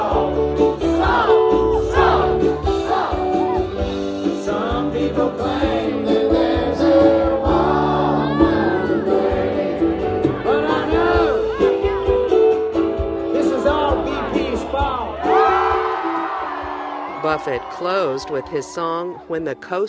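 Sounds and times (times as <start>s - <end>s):
huge concert crowd singing along: 0.0s - 11.8s
live concert music: 0.0s - 19.8s
concert crowd whoops and cheers: 0.9s - 4.0s, 8.1s - 9.0s, 14.8s - 19.8s
speech: 17.4s - 19.8s.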